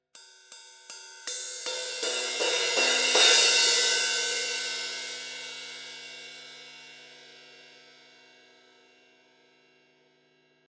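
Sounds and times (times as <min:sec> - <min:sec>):
ride cymbal crescendo hits: 0:00.9 - 0:06.7.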